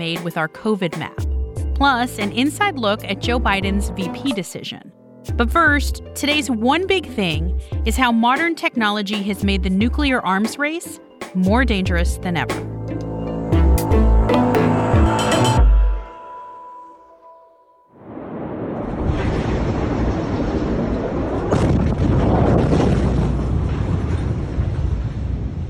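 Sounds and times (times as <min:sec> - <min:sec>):
speech: 0:00.0 - 0:12.7
tonal passage: 0:02.2 - 0:05.6, 0:12.5 - 0:17.4
large explosion blast in Beirut: 0:18.0 - 0:25.6.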